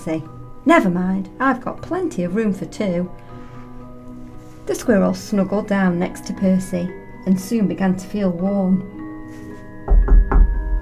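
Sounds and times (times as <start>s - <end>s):
speech: 0.0s - 3.3s, 4.7s - 9.4s
knocking on a door: 9.9s - 10.8s.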